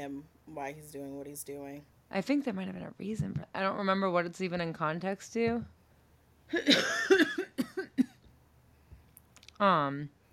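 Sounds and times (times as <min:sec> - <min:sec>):
speech: 0:00.0 - 0:05.8, 0:06.5 - 0:07.7, 0:09.6 - 0:10.2
person coughing: 0:06.5 - 0:08.2.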